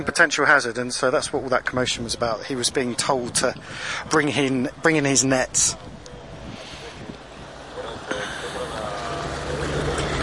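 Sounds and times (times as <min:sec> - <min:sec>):
speech: 0:00.0 - 0:05.9
large ship engine rumble passing on a canal: 0:03.3 - 0:10.2.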